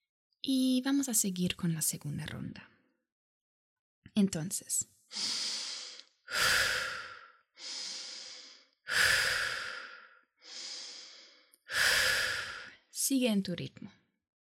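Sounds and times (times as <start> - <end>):
speech: 0.4 - 2.8, 4.2 - 5.5, 13.1 - 14.0
slow deep breathing in a guided breathing exercise: 5.1 - 12.9.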